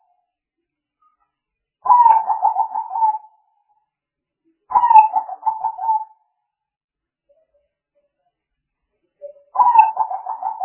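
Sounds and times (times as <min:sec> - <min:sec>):
spotted dove soft rolling coo: 0:01.9 - 0:03.2, 0:04.7 - 0:06.1, 0:09.6 - 0:10.6.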